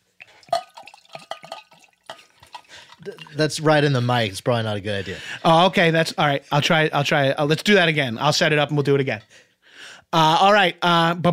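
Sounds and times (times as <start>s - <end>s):
water pouring into a glass: 0.1s - 4.3s
speech: 3.0s - 9.4s, 10.1s - 11.3s.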